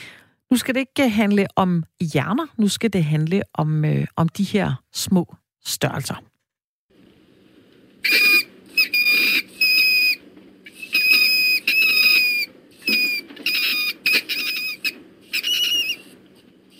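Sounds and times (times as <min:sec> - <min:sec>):
speech: 0:00.5 - 0:06.3
mink squeaking in shrill high-pitched bursts: 0:08.0 - 0:16.2.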